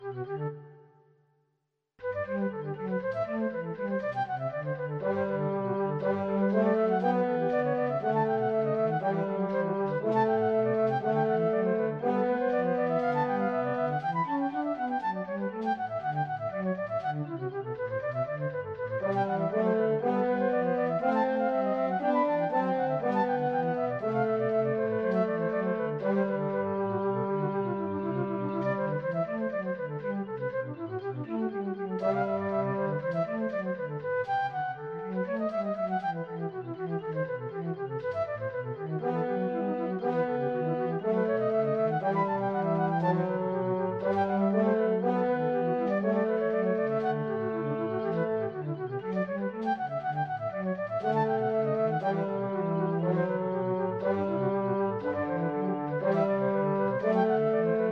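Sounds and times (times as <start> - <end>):
recorder playing a classical piece: 0.0 - 1.0, 2.0 - 57.8.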